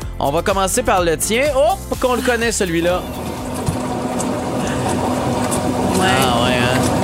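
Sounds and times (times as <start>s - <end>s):
speech: 0.2s - 3.3s
dishwasher running with mechanical drone and rushing wash: 2.2s - 7.0s.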